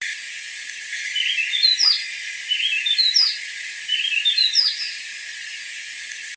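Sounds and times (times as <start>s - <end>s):
White-breasted Wood-Wren singing: 1.0s - 5.1s.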